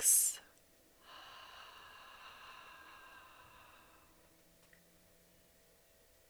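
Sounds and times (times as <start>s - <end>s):
slow deep exhale through the mouth during a breathing exercise: 1.0s - 4.4s.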